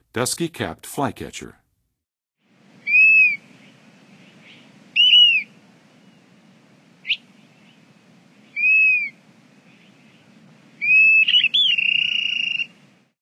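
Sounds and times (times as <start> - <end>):
dusky-capped flycatcher in the western USA: 2.4 - 13.1.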